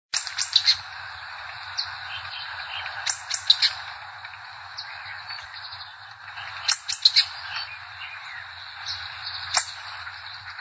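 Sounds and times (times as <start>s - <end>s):
Collared grosbeak calling: 0.2s - 4.0s, 4.6s - 10.6s.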